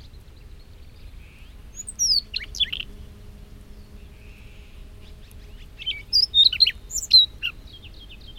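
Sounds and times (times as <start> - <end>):
Siberian rubythroat singing: 1.2 - 2.9, 4.5 - 8.3.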